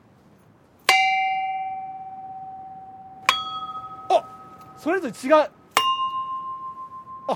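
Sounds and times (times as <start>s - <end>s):
bells being struck with a long ringing tone: 0.9s - 7.3s
speech: 4.1s - 5.6s.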